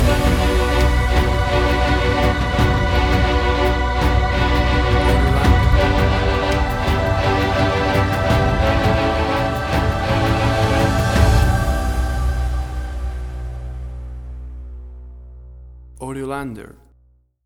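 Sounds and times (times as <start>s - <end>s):
strings playing a big finale: 0.0s - 12.5s
choir singing a big finale: 0.0s - 14.0s.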